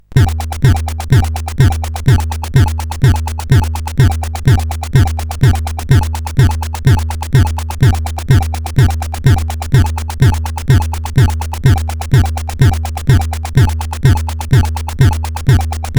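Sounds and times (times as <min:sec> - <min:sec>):
acid synth from a SID chip: 0:00.1 - 0:15.9.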